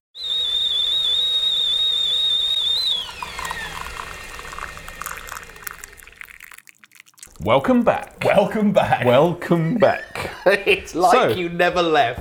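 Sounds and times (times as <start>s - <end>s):
kettle whistling: 0.6s - 7.0s
boiling water hissing and bubbling in a kettle: 3.2s - 9.2s
speech: 7.4s - 12.1s.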